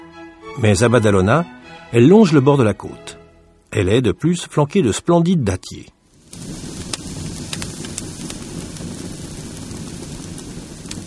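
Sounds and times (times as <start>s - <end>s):
speech: 0.6s - 6.0s
large bonfire crackling in Badalona: 3.4s - 11.0s
low roar of flames: 6.0s - 11.0s.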